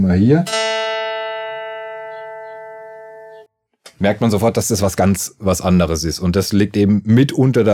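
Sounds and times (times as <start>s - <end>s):
speech: 0.0s - 0.6s, 4.0s - 7.7s
guitar string plucked at 220 Hz: 0.4s - 3.4s.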